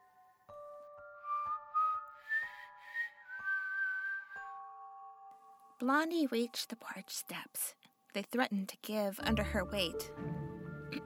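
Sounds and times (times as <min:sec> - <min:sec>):
thin high whistled melody: 0:00.0 - 0:05.6
speech: 0:05.8 - 0:11.0.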